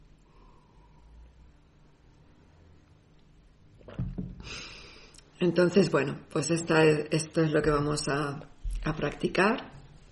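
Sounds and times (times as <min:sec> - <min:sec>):
steady low hum: 0:00.0 - 0:10.0
rough breathy exhale: 0:04.4 - 0:05.2
speech: 0:05.4 - 0:09.8.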